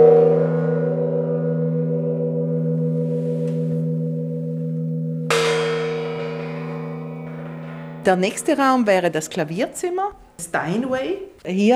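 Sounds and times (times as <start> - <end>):
large gong being struck: 0.0 - 11.4
speech: 8.1 - 11.7.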